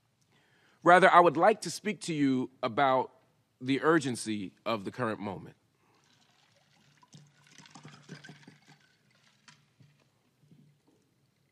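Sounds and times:
speech: 0:00.8 - 0:05.6
water poured into a glass: 0:05.8 - 0:11.5.

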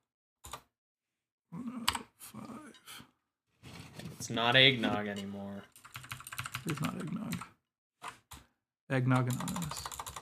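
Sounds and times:
speech: 0:04.3 - 0:05.8, 0:06.6 - 0:07.5, 0:08.9 - 0:09.9
clicky computer keyboard typing: 0:05.8 - 0:08.5, 0:09.1 - 0:10.1.

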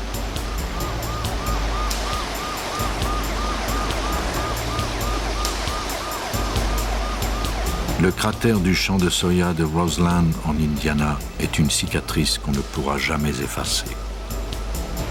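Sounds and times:
emergency siren wailing after a plane crash in Roseland Indiana: 0:00.0 - 0:09.1
steady dense rain at night after a plane crash in Roseland Indiana: 0:00.0 - 0:15.0
speech: 0:08.0 - 0:14.1.

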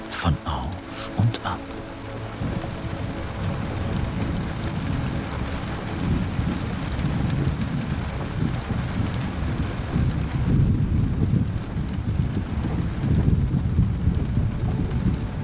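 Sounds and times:
dense rain falling on tree leaves: 0:00.0 - 0:15.4
speech: 0:00.1 - 0:02.6
gusting wind: 0:01.6 - 0:15.4.

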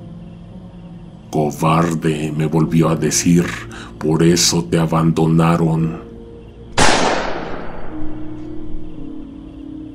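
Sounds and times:
faint steady tone: 0:00.0 - 0:04.5, 0:08.1 - 0:09.9
speech: 0:01.3 - 0:06.1
loud sharp gunshot: 0:06.8 - 0:08.2.

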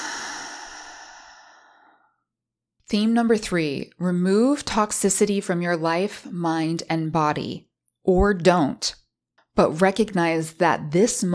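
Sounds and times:
long soft exhale during a guided breathing exercise: 0:00.0 - 0:02.1
speech: 0:02.9 - 0:09.0, 0:09.6 - 0:11.3.

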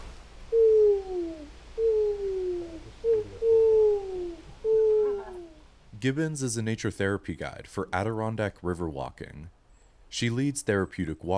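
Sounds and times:
person imitating owl hoots on a woodland walk: 0:00.5 - 0:05.7
speech: 0:06.0 - 0:11.3.

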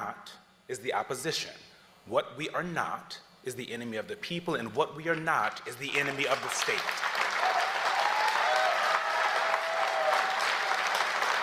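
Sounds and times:
speech: 0:00.2 - 0:07.2
large audience applauding: 0:05.8 - 0:11.4.

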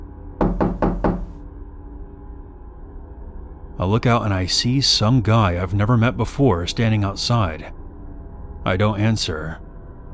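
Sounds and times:
knocking on a door: 0:00.4 - 0:01.4
speech: 0:03.8 - 0:07.8, 0:08.6 - 0:09.6.

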